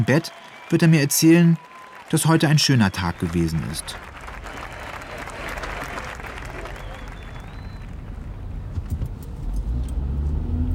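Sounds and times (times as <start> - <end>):
speech: 0.0 - 4.1
car travelling at speed on a motorway: 7.2 - 10.7.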